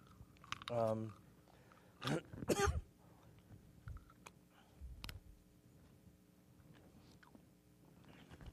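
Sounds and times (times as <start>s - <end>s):
voiced throat clearing: 2.0s - 2.9s.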